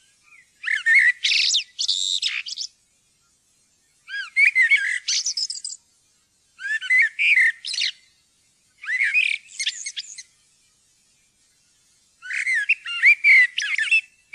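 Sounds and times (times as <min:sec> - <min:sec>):
common blackbird singing: 0:00.0 - 0:02.8, 0:04.0 - 0:05.8, 0:06.6 - 0:08.1, 0:08.8 - 0:10.3, 0:12.2 - 0:14.3.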